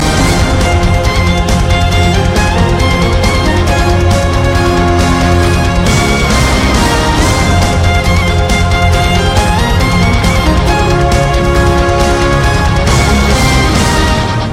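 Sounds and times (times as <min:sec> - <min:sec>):
bagpipe: 0:00.0 - 0:14.5.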